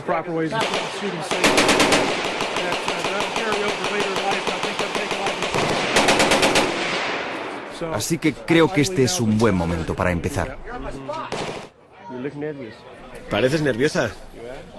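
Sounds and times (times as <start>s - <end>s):
speech: 0.0s - 4.2s, 7.8s - 11.4s, 12.2s - 14.7s
automatic gunfire from firearms during a shooting session: 0.5s - 7.4s, 11.3s - 11.7s.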